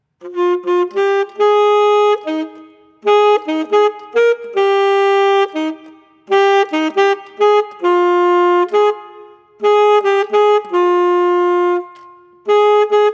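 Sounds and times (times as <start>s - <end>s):
saxophone: 0.2s - 13.1s.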